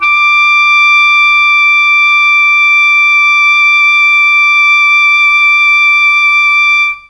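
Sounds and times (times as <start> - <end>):
alto saxophone playing D4: 0.0 - 7.0.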